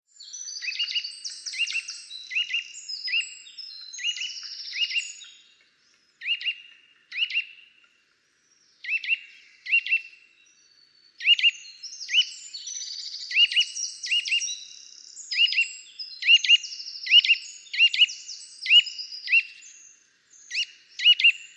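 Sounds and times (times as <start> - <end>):
Eurasian nuthatch Sitta europaea repeating bright upturned whistled notes: 0.3 - 5.3, 6.2 - 7.6, 8.8 - 10.1, 11.2 - 19.6, 20.5 - 21.4.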